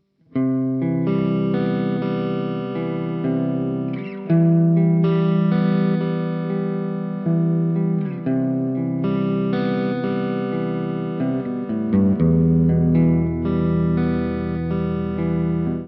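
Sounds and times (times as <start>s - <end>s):
guitar through TwinR SHOD Overdrive: 0.2s - 15.8s.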